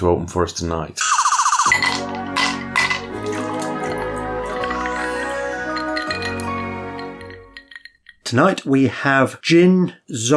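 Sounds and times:
speech: 0.0s - 1.8s, 8.3s - 10.3s
glasses clinking in a toast: 1.3s - 8.3s
soft liquid trickle: 2.0s - 8.2s.

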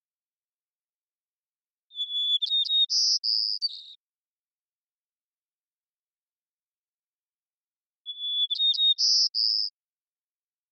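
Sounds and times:
White-crowned sparrow Zonotrichia leucophrys singing in Washington: 1.9s - 4.0s, 8.0s - 9.8s.

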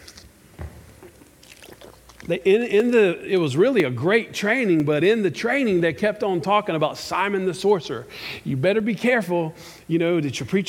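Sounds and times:
person sipping water with mouth sounds: 0.9s - 2.4s
soft gulp of water: 1.0s - 2.4s
small wet mouth clicks and slurps: 1.0s - 2.9s
speech: 2.3s - 10.6s.

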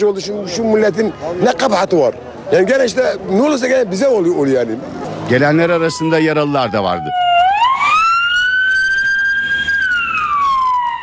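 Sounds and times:
speech: 0.0s - 7.2s
faint traffic rumble: 0.0s - 11.0s
ambulance siren wailing: 5.4s - 11.0s.

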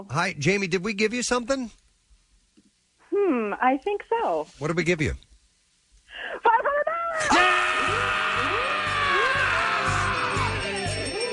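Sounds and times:
speech: 0.0s - 1.8s, 3.3s - 5.3s, 7.2s - 8.0s
woman screaming with excitement on winning a prize: 6.6s - 10.9s.

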